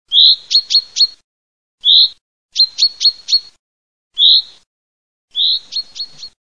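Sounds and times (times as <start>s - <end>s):
chaffinch singing: 0.1s - 1.2s, 1.8s - 3.6s, 4.2s - 4.7s, 5.3s - 6.4s.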